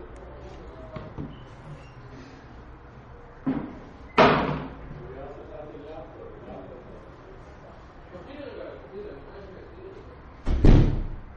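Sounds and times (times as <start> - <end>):
door slamming shut: 4.2 - 4.7, 10.4 - 11.2.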